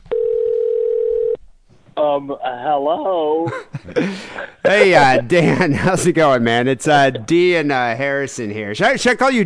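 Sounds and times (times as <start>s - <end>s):
faint noise: 0.0s - 9.4s
telephone dial tone as a call is placed: 0.1s - 1.4s
speech: 2.0s - 9.4s
laughter: 3.4s - 7.6s.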